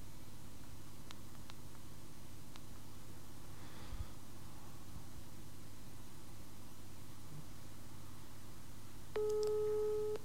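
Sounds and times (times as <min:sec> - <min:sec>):
telephone ringback tone of an outgoing call: 0:09.2 - 0:10.2.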